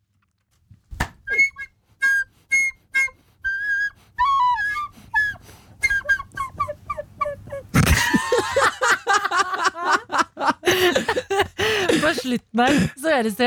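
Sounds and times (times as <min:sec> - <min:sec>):
amateur flute playing short wavering notes: 0:01.3 - 0:07.7
laughter: 0:07.7 - 0:12.9
speech: 0:12.2 - 0:13.4.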